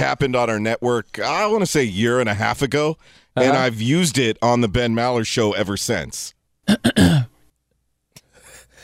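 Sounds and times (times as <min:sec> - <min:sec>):
speech: 0:00.1 - 0:07.3
throat clearing: 0:06.7 - 0:07.3.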